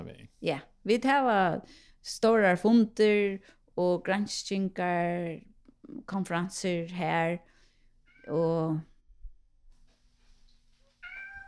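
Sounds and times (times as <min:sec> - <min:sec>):
speech: 0:00.4 - 0:07.5, 0:08.2 - 0:08.9
cat meowing: 0:08.1 - 0:08.4, 0:11.0 - 0:11.4.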